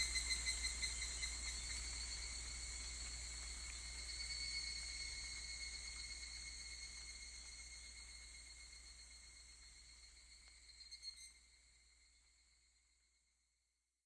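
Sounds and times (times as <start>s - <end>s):
higurashi cicada song, soft high ringing tone: 0.0s - 11.8s.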